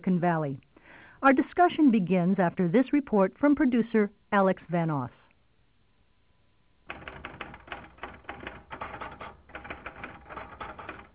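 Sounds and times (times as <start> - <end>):
speech: 0.0 - 5.2
manual typewriter keys clacking: 6.9 - 11.1.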